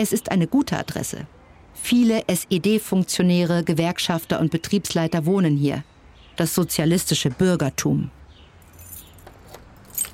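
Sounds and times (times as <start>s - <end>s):
speech: 0.0s - 8.2s
keys jangling: 8.6s - 10.1s.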